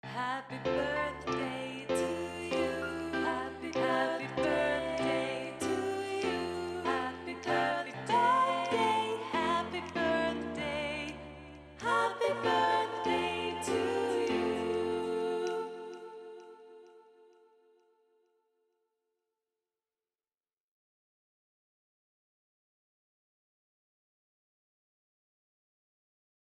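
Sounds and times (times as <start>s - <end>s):
piano piece: 0.2s - 17.0s.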